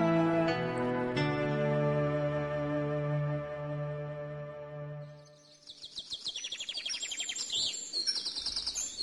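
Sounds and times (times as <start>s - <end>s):
sustained mellow melodic passage: 0.0s - 5.4s
many small birds chirping and twittering in the mountains: 5.0s - 9.0s.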